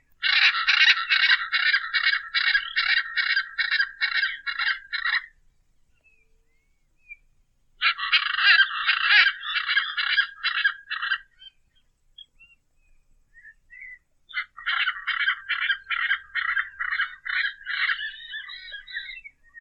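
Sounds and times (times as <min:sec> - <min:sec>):
faint soft bird notes: 0:00.0 - 0:19.5
Hyacinth Macaw squawking: 0:00.2 - 0:05.4, 0:07.8 - 0:11.6, 0:13.7 - 0:19.3.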